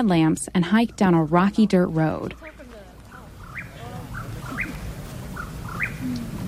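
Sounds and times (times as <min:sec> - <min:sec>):
speech: 0:00.0 - 0:02.5
low outdoor hum: 0:00.0 - 0:06.4
Mexican whippoorwill calling at dusk in the San Bernardino National Forest: 0:03.4 - 0:04.8, 0:05.4 - 0:06.4.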